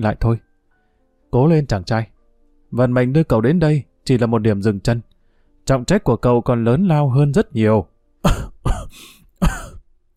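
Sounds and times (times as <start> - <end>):
speech: 0.0 - 0.5, 1.3 - 2.1, 2.7 - 9.6
young man coughing up blood from an unhealed wound: 8.2 - 9.8.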